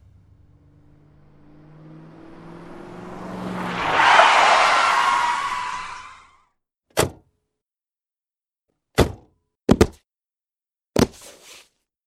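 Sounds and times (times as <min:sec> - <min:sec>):
taxi brakes screeching at a pier: 0:00.0 - 0:06.4.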